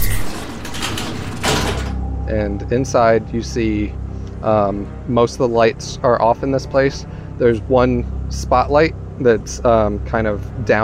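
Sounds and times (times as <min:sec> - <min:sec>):
sliding door whooshing open: 0:00.0 - 0:02.0
low rumble: 0:00.0 - 0:10.8
speech: 0:02.3 - 0:10.8.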